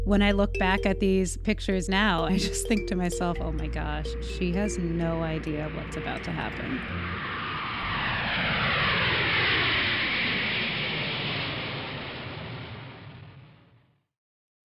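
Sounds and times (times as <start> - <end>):
speech: 0.1 - 7.3
propeller airplane engine droning as it passes: 1.9 - 13.0.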